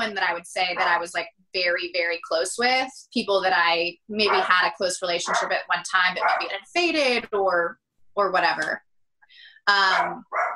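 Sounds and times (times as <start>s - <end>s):
speech: 0.0s - 8.9s, 9.6s - 10.5s
dog barking: 4.2s - 6.6s, 9.9s - 10.5s.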